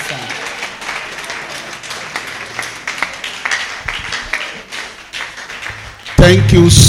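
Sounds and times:
audience applauding: 0.0 - 6.8
speech: 6.2 - 6.8.

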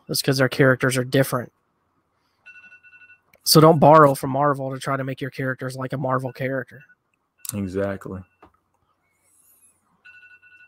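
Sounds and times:
speech: 0.1 - 1.6, 3.4 - 6.9, 7.5 - 8.3
faint electronic alarm with high-pitched pulsing tone: 2.2 - 4.3, 5.4 - 10.6.

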